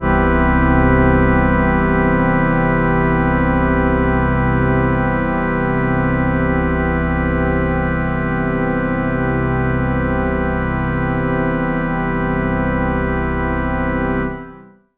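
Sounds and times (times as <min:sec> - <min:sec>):
synth organ major chord: 0:00.0 - 0:14.8.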